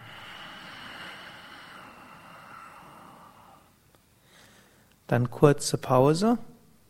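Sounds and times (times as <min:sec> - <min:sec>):
breathy exhale through a narrowed throat: 0:00.0 - 0:04.9
speech: 0:05.1 - 0:06.5.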